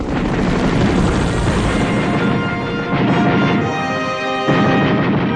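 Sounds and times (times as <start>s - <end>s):
Mi-8 helicopter engines and rotors roaring during a military exercise: 0.0s - 5.2s.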